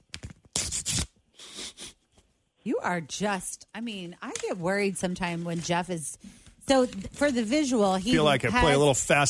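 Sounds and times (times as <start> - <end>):
envelope being slit open with an opener: 0.2 - 1.1
speech: 2.6 - 9.2.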